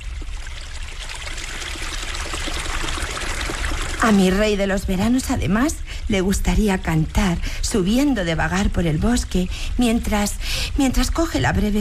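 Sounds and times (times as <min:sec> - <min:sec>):
spring water trickling and bubbling at the foot of a rock: 0:00.0 - 0:11.7
speech: 0:04.0 - 0:11.7.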